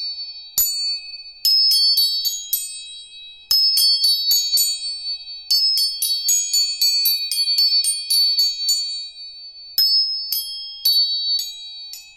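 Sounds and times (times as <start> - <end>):
tuning fork for tuning: 0.0 - 12.1.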